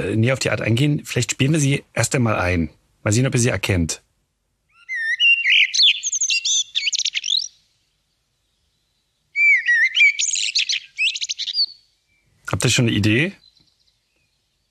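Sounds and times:
speech: 0:00.0 - 0:04.0, 0:12.5 - 0:13.4
common blackbird song: 0:04.7 - 0:14.6.

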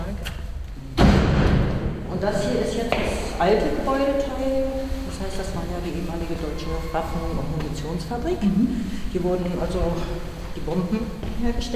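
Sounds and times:
heavy door shoved open with a deep thud: 0:01.0 - 0:03.4
steady broadband rush of noise: 0:01.7 - 0:11.7
speech: 0:02.2 - 0:11.7.

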